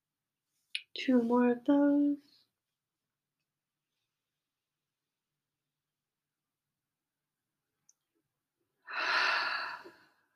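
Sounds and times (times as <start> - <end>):
speech: 1.0 - 2.4
deep airy breath during a calming breathing exercise: 8.8 - 10.3.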